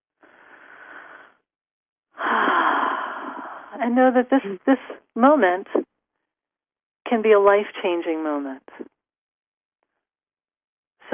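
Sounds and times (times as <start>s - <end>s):
deep breath in: 0.2s - 1.4s, 2.2s - 3.7s
speech: 3.8s - 5.8s, 7.1s - 8.9s.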